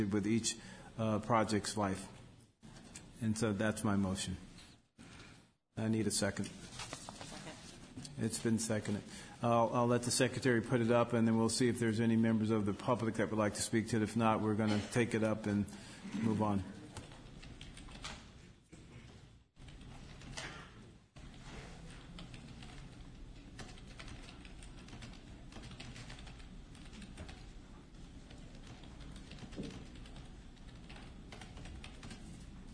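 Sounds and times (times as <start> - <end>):
speech: 0.0 - 2.2, 3.2 - 4.5, 5.8 - 6.8, 8.0 - 16.8
faint room hum: 0.0 - 32.7
typing on a computer keyboard during a meeting: 17.0 - 18.3, 22.0 - 32.4.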